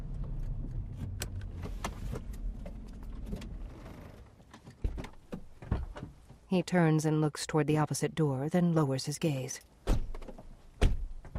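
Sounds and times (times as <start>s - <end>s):
car ride rumble as a car pulls to a stop: 0.0s - 6.5s
speech: 6.5s - 9.8s.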